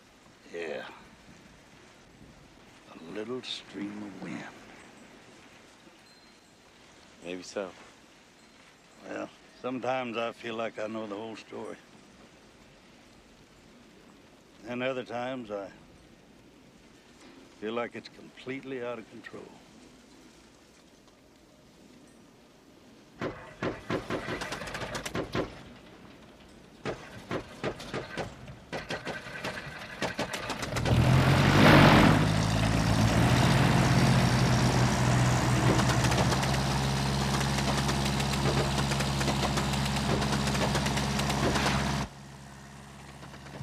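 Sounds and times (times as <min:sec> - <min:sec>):
speech: 0:03.2 - 0:04.6, 0:07.2 - 0:07.9, 0:09.0 - 0:11.9, 0:14.7 - 0:15.8, 0:17.6 - 0:19.6
propeller plane engine sputtering and running: 0:23.3 - 0:25.6, 0:27.0 - 0:43.6.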